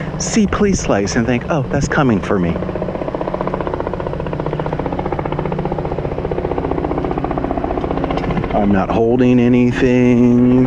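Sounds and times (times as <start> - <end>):
medevac helicopter rotor blades thumping overhead: 0.0 - 10.6
speech: 0.2 - 2.8, 8.6 - 10.6.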